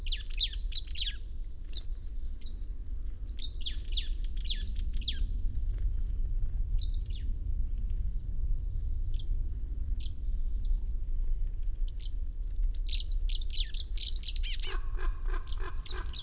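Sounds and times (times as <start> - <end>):
low steady rumble: 0.0 - 16.2
marsh tit Poecile palustris chirping calls: 14.4 - 16.2.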